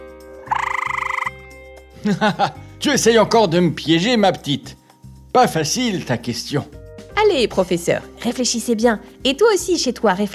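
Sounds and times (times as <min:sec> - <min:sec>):
wood frog croaking in a rattling trill: 0:00.4 - 0:01.4
laughter: 0:02.0 - 0:02.6
speech: 0:02.0 - 0:10.3.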